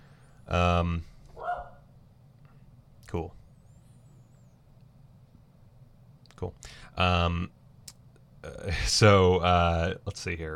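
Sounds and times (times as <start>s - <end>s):
speech: 0.5s - 1.1s, 3.1s - 3.4s, 6.4s - 7.6s, 8.4s - 10.5s
dog barking: 1.4s - 1.9s.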